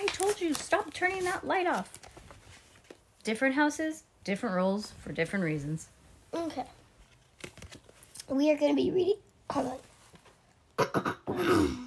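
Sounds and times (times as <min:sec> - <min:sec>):
speech: 0:00.4 - 0:02.0, 0:03.2 - 0:06.8, 0:08.3 - 0:09.9, 0:10.9 - 0:11.8
person clearing throat with gravelly bursts and a rasping rumble: 0:10.8 - 0:11.8.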